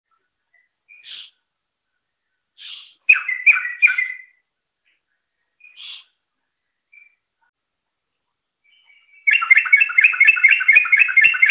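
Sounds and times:
Yellow-vented bulbul singing: 0:00.1 - 0:01.4, 0:02.6 - 0:04.4, 0:05.6 - 0:06.2, 0:06.8 - 0:07.3, 0:08.6 - 0:11.5.

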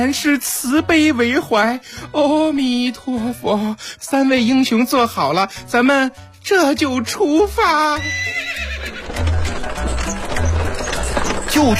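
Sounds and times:
speech: 0:00.0 - 0:08.5, 0:11.6 - 0:11.7
horse pulling a carriage neighing: 0:08.0 - 0:10.2
clip-clop hoofbeats of a horse pulling a carriage: 0:08.1 - 0:11.7
low rolling thuds from a horse-drawn carriage: 0:08.8 - 0:11.7.

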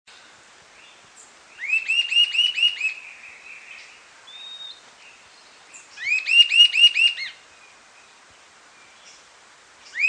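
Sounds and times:
sibilant sirystes Sirystes sibilator sibilator whistling: 0:01.6 - 0:03.0, 0:06.0 - 0:07.4.

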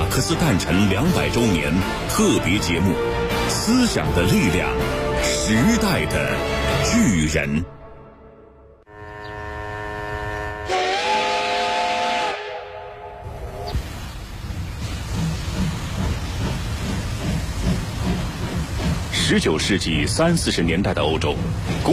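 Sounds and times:
steam train rumbling and clatter: 0:00.0 - 0:07.2, 0:13.3 - 0:21.9
speech: 0:00.2 - 0:07.8, 0:19.3 - 0:21.9
steam train whistle: 0:08.9 - 0:13.3.

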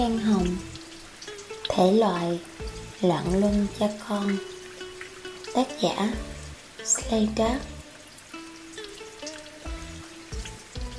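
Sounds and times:
heavy rain at night: 0:00.0 - 0:10.9
soft sustained musical notes: 0:00.0 - 0:10.9
speech: 0:01.8 - 0:04.5, 0:05.6 - 0:07.8.

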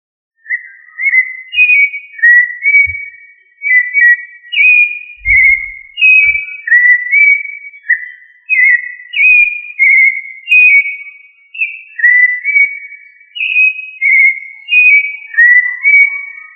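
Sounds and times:
thrush of family Turdidae singing clear whistled phrases: 0:00.4 - 0:16.5
faint low thumps: 0:02.8 - 0:03.1, 0:05.2 - 0:06.4.

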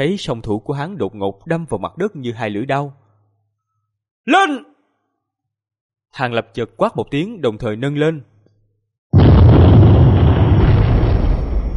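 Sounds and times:
speech: 0:00.0 - 0:03.0, 0:04.2 - 0:04.7, 0:06.1 - 0:08.3
explosive blast booming through a mountain valley: 0:09.2 - 0:11.7
ground cracking apart: 0:09.2 - 0:11.7.

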